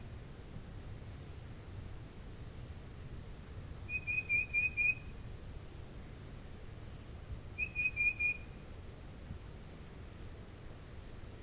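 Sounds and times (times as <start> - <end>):
quiet hiss: 0.0 - 11.4
tufted titmouse whistling: 3.9 - 5.0, 7.6 - 8.4.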